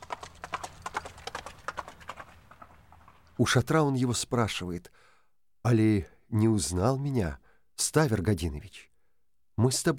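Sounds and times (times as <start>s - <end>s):
hooves of a galloping horse: 0.0s - 3.5s
speech: 3.4s - 5.0s, 5.6s - 8.9s, 9.6s - 9.9s.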